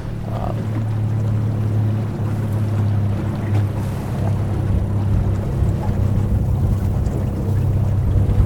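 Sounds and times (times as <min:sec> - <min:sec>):
constant low hum: 0:00.0 - 0:08.4
faint lapping of water on a small lake: 0:00.0 - 0:08.4
steady wind rushing across a microphone aboard a small boat on a small lake: 0:02.8 - 0:08.4.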